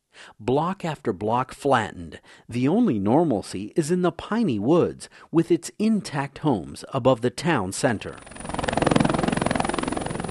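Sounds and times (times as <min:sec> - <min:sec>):
speech: 0:00.4 - 0:08.4
Air Force helicopter rotor beats: 0:08.1 - 0:10.2.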